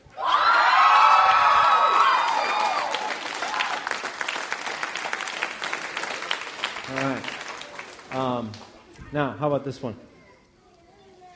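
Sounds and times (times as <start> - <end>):
large crowd yelling and cheering: 0.0 - 8.2
applause: 0.4 - 8.8
speech: 9.1 - 10.2.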